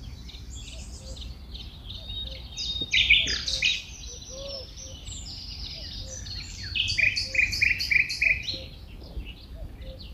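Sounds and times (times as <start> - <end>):
common nightingale song in the Netherlands: 0.0 - 10.1.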